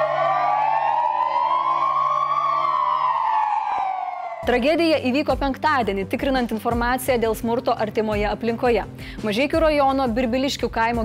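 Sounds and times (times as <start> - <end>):
police car siren wailing as tribute to fallen officer: 0.0 - 4.6
speech: 4.4 - 11.0.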